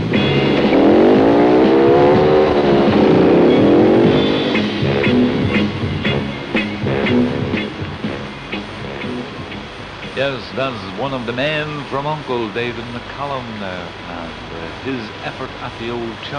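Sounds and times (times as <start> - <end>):
motorcycle engine revving and pulling away: 0.0 - 9.8
speech: 10.3 - 16.3.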